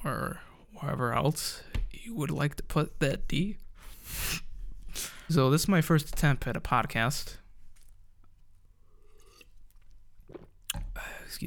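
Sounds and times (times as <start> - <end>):
speech: 0.0 - 4.4, 5.0 - 7.4
person sipping and swallowing lemon water: 8.8 - 11.3.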